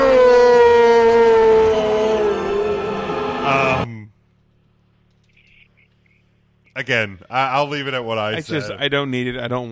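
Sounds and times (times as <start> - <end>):
wolf howling: 0.0 - 3.8
speech: 6.8 - 9.7.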